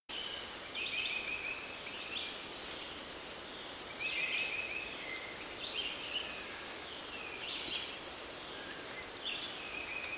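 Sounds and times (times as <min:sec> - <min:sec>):
green-winged cicada Diceroprocta vitripennis shrill buzz: 0:00.1 - 0:10.0.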